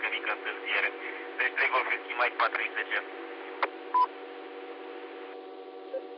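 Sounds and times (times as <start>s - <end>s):
narrow hissy radio channel: 0.0s - 3.1s
speech: 1.6s - 3.4s.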